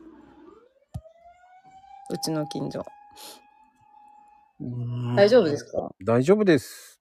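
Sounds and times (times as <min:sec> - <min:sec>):
fire engine siren wailing: 0:00.0 - 0:05.6
speech: 0:02.1 - 0:03.4, 0:04.6 - 0:06.9.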